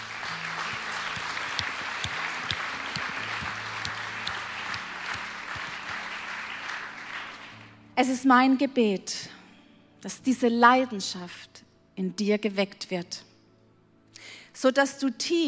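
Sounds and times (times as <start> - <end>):
large audience applauding: 0.0 - 7.8
speech: 8.0 - 9.4, 10.0 - 13.3, 14.6 - 15.4.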